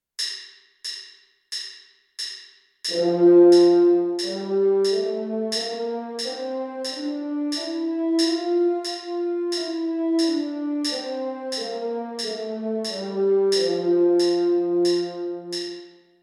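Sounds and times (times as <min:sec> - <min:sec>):
French horn playing a C major scale: 0:02.9 - 0:15.9.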